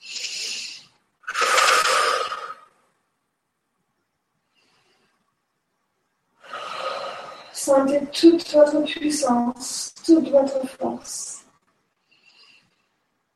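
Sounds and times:
breathing in and out during an exercise session: 0.0s - 2.8s, 4.4s - 5.3s, 6.4s - 7.6s, 11.9s - 13.2s
speech: 7.7s - 11.4s.

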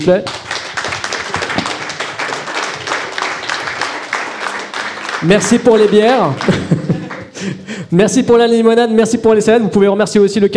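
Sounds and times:
speech: 0.0s - 0.4s, 5.2s - 10.5s
crowd applauding to thank a hosting team: 0.2s - 7.4s
laughter: 5.3s - 7.7s.

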